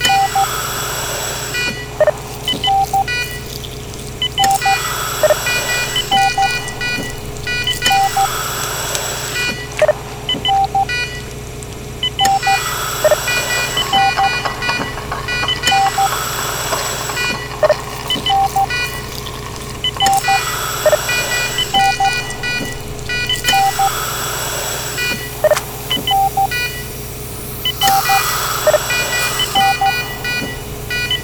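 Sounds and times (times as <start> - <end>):
operating room ambience: 0.0 - 31.2.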